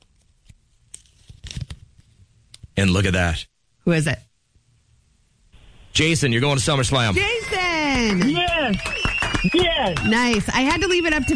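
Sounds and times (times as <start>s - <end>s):
folded paper slips rustling and crumpling: 0.0s - 2.1s
speech: 2.8s - 4.3s, 6.0s - 11.3s.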